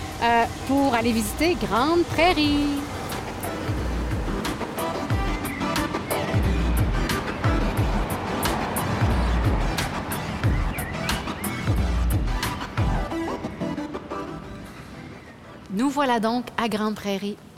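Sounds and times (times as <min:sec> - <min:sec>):
wind rush: 0:00.0 - 0:13.6
car driving on a road: 0:00.0 - 0:13.9
speech: 0:00.2 - 0:03.0, 0:15.9 - 0:17.5.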